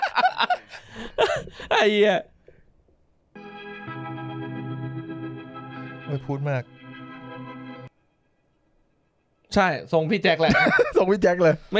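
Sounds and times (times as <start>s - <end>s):
speech: 1.8s - 2.3s, 6.1s - 6.8s, 9.5s - 11.7s
sustained guitar chord through an octave reverb pedal: 3.4s - 7.9s.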